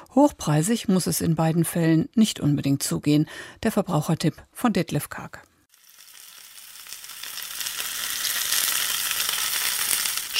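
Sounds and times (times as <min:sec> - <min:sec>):
speech: 0:00.2 - 0:05.5
food sizzling in a hot pan: 0:05.7 - 0:10.3.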